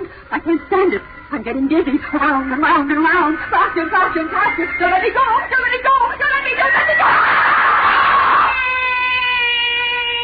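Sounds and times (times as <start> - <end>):
speech: 0.4 - 7.4
person screaming: 7.0 - 10.2.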